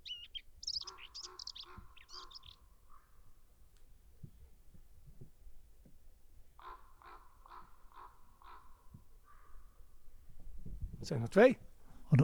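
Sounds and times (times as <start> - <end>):
faint outdoor noise: 0.0 - 12.2
common ravens croaking while flying past overhead: 0.7 - 3.3, 6.6 - 9.9
speech: 11.1 - 12.2.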